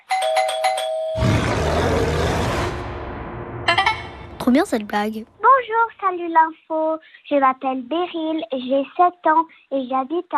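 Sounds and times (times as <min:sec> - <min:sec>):
doorbell ringing with bright repeated chime tones: 0:00.0 - 0:01.2
loud broad rumbling roar: 0:01.2 - 0:05.5
speech: 0:04.5 - 0:10.3.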